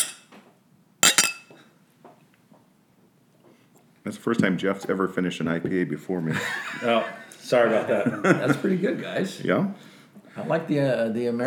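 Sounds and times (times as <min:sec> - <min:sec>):
glasses clinking in a toast: 0:00.0 - 0:00.3, 0:01.0 - 0:01.6
speech: 0:04.1 - 0:11.4
laughter: 0:06.3 - 0:09.2.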